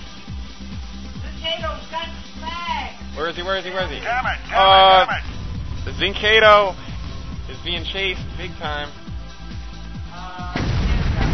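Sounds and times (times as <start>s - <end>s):
speech: 1.5s - 5.3s, 6.0s - 6.8s, 7.5s - 9.0s
mortar fire in a video game capture-the-flag match: 5.2s - 8.8s, 10.6s - 11.3s.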